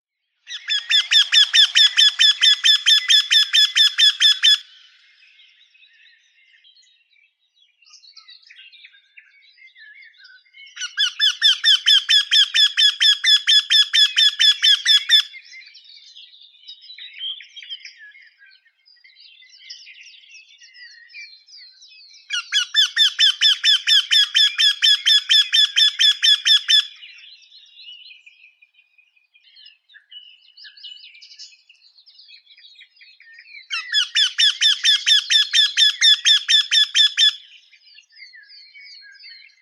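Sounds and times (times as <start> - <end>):
Eurasian wryneck Jynx torquilla calling: 0.5 - 4.8, 10.8 - 15.4, 22.3 - 27.2, 33.7 - 37.6.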